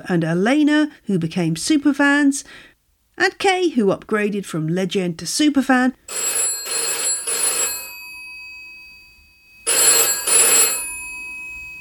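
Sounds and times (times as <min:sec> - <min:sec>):
speech: 0:00.0 - 0:06.5
office telephone ringing with a trilling bell: 0:06.1 - 0:11.8.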